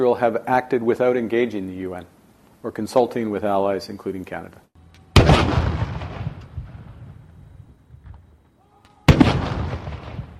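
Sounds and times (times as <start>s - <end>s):
speech: 0.0s - 4.7s
ceremonial artillery gun salute booms: 5.1s - 8.3s, 9.0s - 10.3s.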